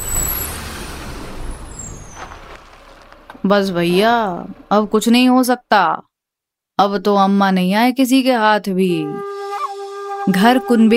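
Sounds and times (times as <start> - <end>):
brick-laden heavy truck engine idling: 0.0 - 5.6
speech: 3.4 - 6.1, 6.8 - 9.3, 10.3 - 10.9.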